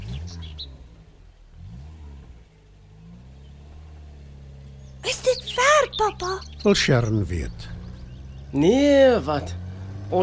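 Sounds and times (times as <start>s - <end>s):
faint bird chirps: 0.0s - 0.9s, 4.6s - 9.9s
car engine starting, idling and revving as it pulls away: 0.0s - 10.2s
speech: 5.1s - 7.7s, 8.5s - 10.2s.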